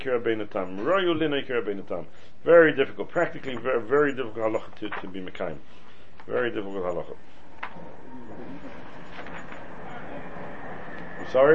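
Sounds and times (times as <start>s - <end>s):
speech: 0.0s - 8.8s, 11.3s - 11.5s
voices: 6.3s - 11.5s
trains passing by: 7.8s - 11.5s.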